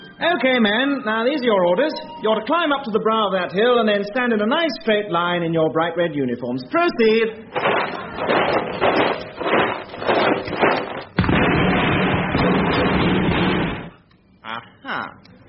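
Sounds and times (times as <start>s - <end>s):
speech: 0.2s - 8.9s
volley of gunfire from rebels hidden behind trees: 7.6s - 14.0s.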